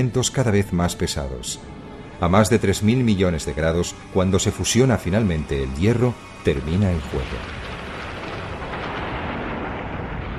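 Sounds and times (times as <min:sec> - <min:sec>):
speech: 0:00.0 - 0:07.6
cinematic explosion sound effect depicting a star's supernova explosion: 0:07.0 - 0:10.3.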